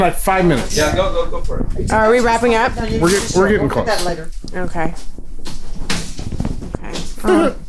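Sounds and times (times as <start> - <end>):
speech: 0.0 - 5.6, 7.2 - 7.6
heavy couch and furniture being shifted: 0.6 - 7.6.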